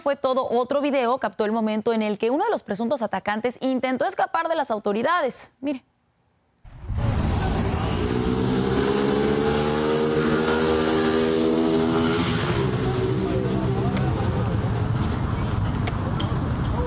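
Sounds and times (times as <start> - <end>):
speech: 0.0 - 5.9
constant noise: 0.0 - 16.8
motorcycle engine revving and accelerating: 7.0 - 14.4.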